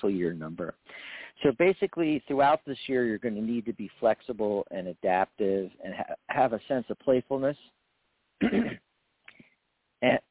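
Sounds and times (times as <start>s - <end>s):
speech: 0.0s - 7.8s, 8.4s - 8.8s, 10.0s - 10.2s
person coughing: 8.4s - 8.8s.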